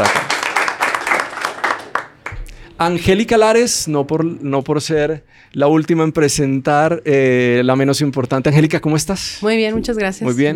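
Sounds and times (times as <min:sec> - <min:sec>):
audience applause: 0:00.0 - 0:02.6
scattered isolated claps: 0:00.0 - 0:02.6
speech: 0:02.8 - 0:10.5.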